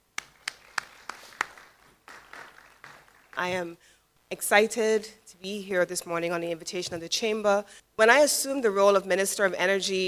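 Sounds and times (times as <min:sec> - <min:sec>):
slow hand claps: 0:00.0 - 0:03.6
audience applause: 0:00.2 - 0:03.6
speech: 0:03.4 - 0:10.0.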